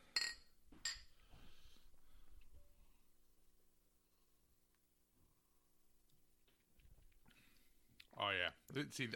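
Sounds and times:
beer glasses clinking in a toast: 0.2 - 1.0
speech: 8.2 - 9.1.

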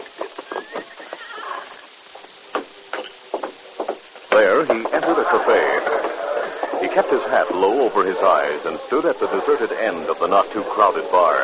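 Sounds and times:
horse hooves clip-clopping: 0.0 - 11.4
ridden horse whinnying: 0.5 - 1.9
speech: 4.4 - 6.2, 6.8 - 11.4.

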